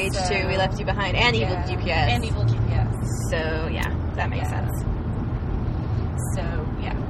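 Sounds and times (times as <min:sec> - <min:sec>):
speech: 0:00.0 - 0:02.5, 0:03.3 - 0:04.9
car interior rumble while driving: 0:00.0 - 0:07.0
road and engine drone of a moving car: 0:00.0 - 0:07.0.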